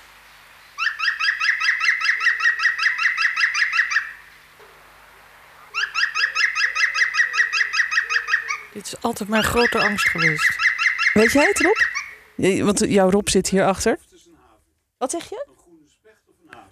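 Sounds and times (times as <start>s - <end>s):
European green woodpecker giving its ringing laugh: 0.8s - 4.2s, 5.6s - 12.3s
speech: 8.8s - 10.6s, 11.2s - 11.8s, 12.4s - 14.1s, 15.0s - 15.4s.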